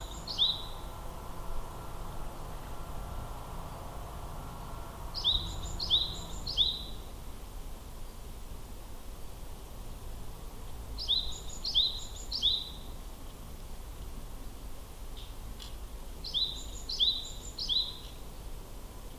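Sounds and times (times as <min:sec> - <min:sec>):
Japanese tit singing two-part notes: 0:00.0 - 0:07.2, 0:11.0 - 0:13.0, 0:16.2 - 0:18.4
constant low rumbling noise: 0:00.0 - 0:07.5.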